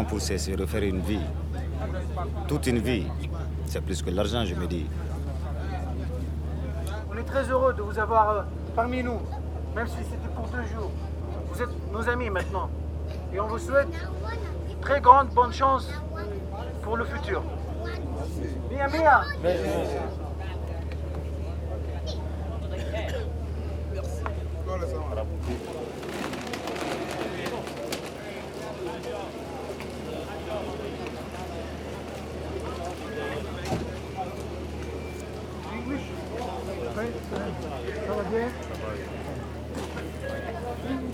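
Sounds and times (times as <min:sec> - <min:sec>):
speech: 0:00.0 - 0:05.2, 0:07.2 - 0:17.6, 0:18.2 - 0:20.2
people moving about: 0:00.0 - 0:07.7, 0:19.4 - 0:41.1
boat engine droning: 0:00.0 - 0:17.8, 0:18.5 - 0:41.1.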